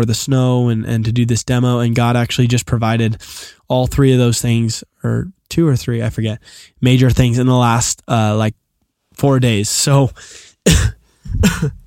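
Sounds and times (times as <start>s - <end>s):
speech: 0.0s - 8.6s, 9.2s - 11.8s
person coughing: 10.6s - 11.8s.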